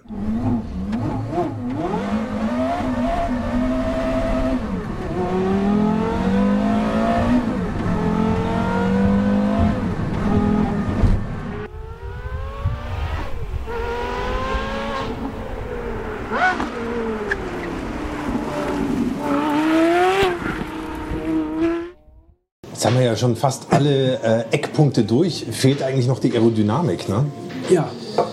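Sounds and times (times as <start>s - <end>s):
Porsche Carrera GT sports car engine revving and driving: 0.0s - 22.4s
speech: 23.2s - 28.0s.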